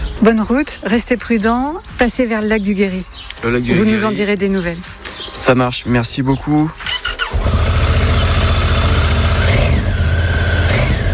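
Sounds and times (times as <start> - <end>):
speech: 0.2 - 7.0
motorcycle engine starting, running and revving: 6.9 - 11.1.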